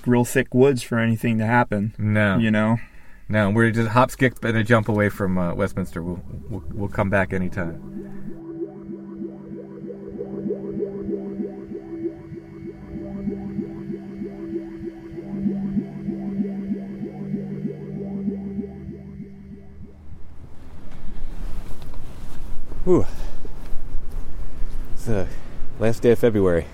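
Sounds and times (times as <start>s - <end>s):
speech: 0.0s - 8.4s, 22.9s - 23.2s, 25.0s - 26.7s
low droning rumble: 4.6s - 21.4s
cold wind blowing outdoors behind a church: 5.1s - 22.8s.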